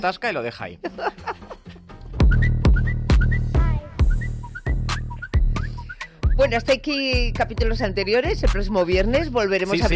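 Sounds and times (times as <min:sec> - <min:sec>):
speech: 0:00.0 - 0:01.3, 0:06.4 - 0:09.9
steady thumping beat with heavy bass: 0:02.1 - 0:09.9
whistled melody of short rising notes: 0:02.2 - 0:06.5.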